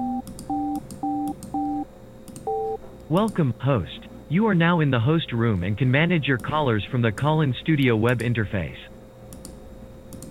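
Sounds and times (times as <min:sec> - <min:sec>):
telephone keypad tones entering a PIN on a phone line: 0:00.0 - 0:01.8, 0:02.4 - 0:02.8
speech: 0:03.1 - 0:08.9.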